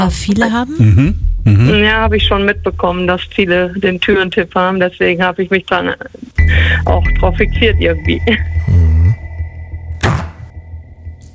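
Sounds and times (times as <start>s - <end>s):
speech: 0.0s - 8.9s
brief low humming tone: 0.8s - 4.8s, 6.4s - 11.3s
fridge-freezer freezer door shutting with a muffled thump: 10.0s - 10.5s.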